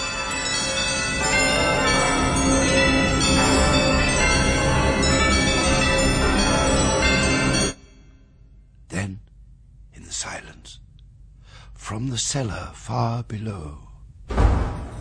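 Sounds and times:
many house bells clanging: 0:00.0 - 0:08.2
speech: 0:12.0 - 0:13.9.

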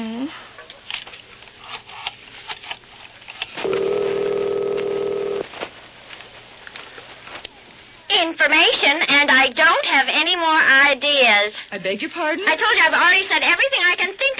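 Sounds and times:
telephone ringing with electronic trill: 0:03.6 - 0:05.5
speech: 0:08.3 - 0:14.3.

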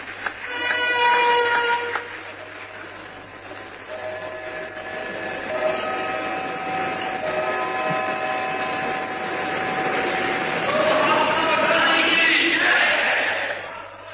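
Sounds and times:
sustained horn-like tones: 0:00.3 - 0:13.1
large crowd roaring and cheering in tribute: 0:09.4 - 0:14.1.

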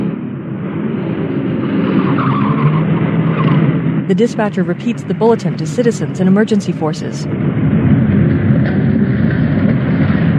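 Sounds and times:
police car engines roaring off at speed: 0:00.0 - 0:10.3
police car tires squealing and skidding: 0:01.6 - 0:03.9
speech: 0:04.1 - 0:07.7.

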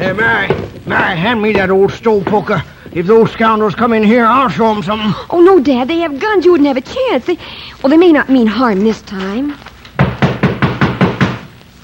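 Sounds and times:
speech: 0:00.0 - 0:09.7
heavy booming knocks pounding on a wooden door: 0:00.1 - 0:02.4, 0:10.0 - 0:11.5.

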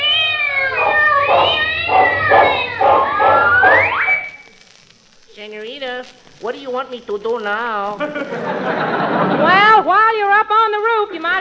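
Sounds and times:
cat yowling and caterwauling: 0:00.0 - 0:04.3
speech: 0:06.0 - 0:11.3
laughter: 0:08.0 - 0:09.9.

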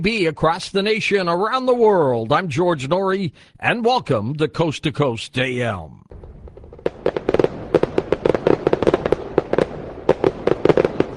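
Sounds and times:
speech: 0:00.0 - 0:06.3
fireworks crackling and popping: 0:06.1 - 0:11.1.

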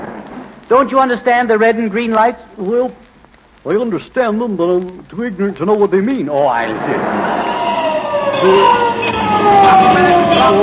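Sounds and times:
speech: 0:00.7 - 0:07.4, 0:08.4 - 0:10.6
traffic noise: 0:06.6 - 0:10.6
fire truck siren wailing: 0:07.0 - 0:10.6.

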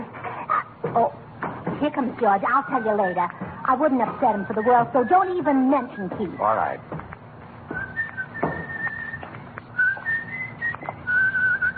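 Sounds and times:
low hum: 0:00.0 - 0:11.7
speech: 0:00.9 - 0:01.2, 0:01.8 - 0:07.1
person whistling a simple melody: 0:04.4 - 0:06.4, 0:07.7 - 0:11.7.

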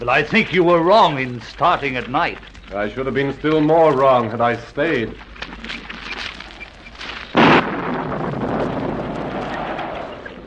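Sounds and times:
speech: 0:00.0 - 0:05.8
gusting wind roaring in the mountains: 0:06.4 - 0:10.4
loud crack of thunder in the mountains: 0:07.4 - 0:10.4.

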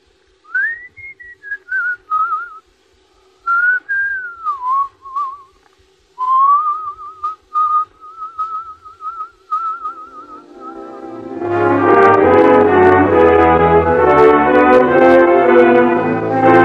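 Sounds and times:
faint steady hum: 0:00.0 - 0:16.6
person whistling a wandering melody: 0:00.5 - 0:02.6, 0:03.4 - 0:05.6, 0:06.2 - 0:11.1.

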